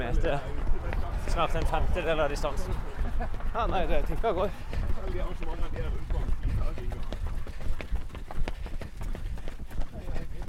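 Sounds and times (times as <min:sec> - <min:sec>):
footfalls pounding while running: 0:00.0 - 0:10.4
speech: 0:00.2 - 0:00.6, 0:01.2 - 0:06.9
laughter: 0:02.5 - 0:04.7
heavy breathing of person running: 0:04.4 - 0:05.1, 0:06.3 - 0:10.4.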